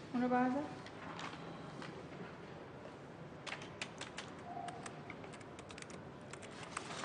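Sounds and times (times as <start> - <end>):
speech: 0.2 - 0.8
typing on a computer keyboard: 3.5 - 6.9.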